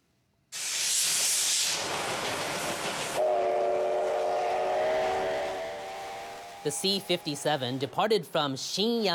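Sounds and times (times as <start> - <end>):
steam locomotive releasing steam hiss: 0.5 - 8.0
steam locomotive whistle blowing: 3.1 - 7.9
steam locomotive rumble on test run: 3.1 - 8.1
speech: 6.6 - 9.1.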